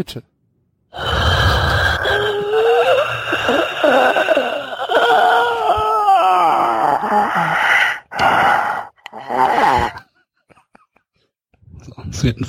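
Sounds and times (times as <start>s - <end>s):
speech: 0.0s - 0.3s, 12.2s - 12.4s
person breathing heavily and theatrically: 0.9s - 6.2s, 6.8s - 10.0s
person panting: 1.0s - 5.7s, 7.1s - 9.0s
person moaning and gasping: 1.0s - 10.1s.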